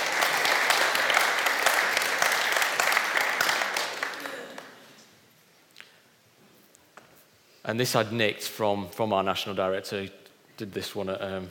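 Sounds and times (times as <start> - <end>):
crowd applauding: 0.0 - 5.0
speech: 7.7 - 11.5.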